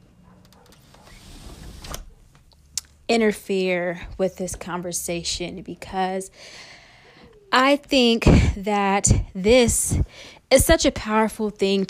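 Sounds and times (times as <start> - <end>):
window sliding shut with a low rumbling scrape: 0.8 - 2.1
speech: 3.1 - 6.7, 7.5 - 11.8.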